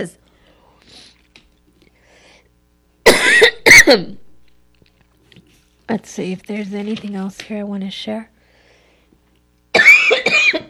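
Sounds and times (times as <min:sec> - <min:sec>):
speech: 0:00.0 - 0:00.2, 0:03.9 - 0:04.2, 0:05.9 - 0:08.3
person coughing: 0:03.0 - 0:04.2, 0:09.8 - 0:10.6.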